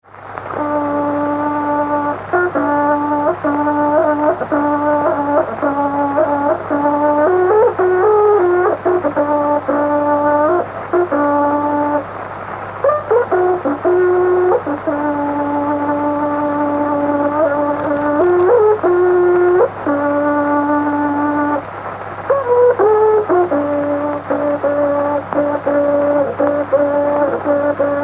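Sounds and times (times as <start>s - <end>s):
Mapuche trutruka playing: 0.4s - 28.0s.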